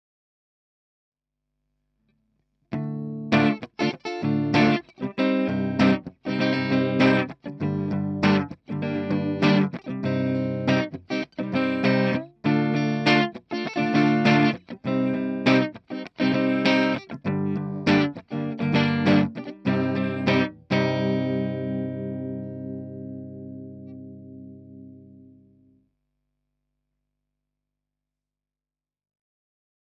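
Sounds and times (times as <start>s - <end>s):
electric guitar: 2.7s - 25.8s.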